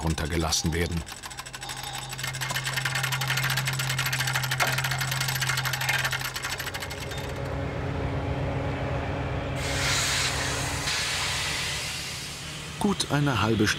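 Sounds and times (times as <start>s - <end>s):
speech: 0.0s - 1.3s, 12.8s - 13.7s
locomotive engine drone while shunting freight wagons: 0.0s - 13.7s
hissing steam from a shunting locomotive: 9.6s - 13.3s.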